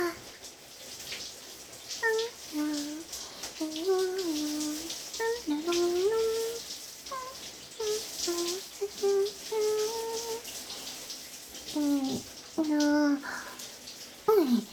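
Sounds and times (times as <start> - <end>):
person speaking softly in a sing-song way: 0.0 - 0.3, 2.0 - 10.4, 11.7 - 14.7
steady hiss of shower water spraying: 0.0 - 14.7.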